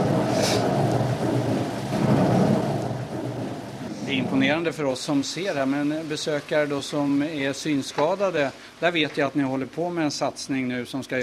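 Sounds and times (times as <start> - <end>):
thunder rolling in a rainforest thunderstorm: 0.0 - 7.8
heavy rain pouring down in a rainforest: 0.0 - 11.2
speech: 4.3 - 11.2.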